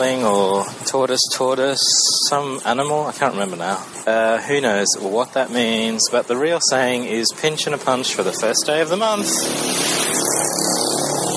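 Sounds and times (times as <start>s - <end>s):
speech: 0.0s - 10.4s
noisy motorbikes passing: 3.6s - 11.3s.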